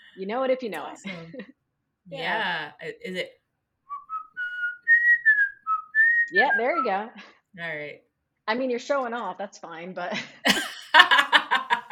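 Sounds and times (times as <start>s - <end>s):
speech: 0.2s - 3.4s, 6.3s - 11.0s
person whistling a short clear tune: 3.9s - 6.9s
laughter: 10.2s - 11.9s.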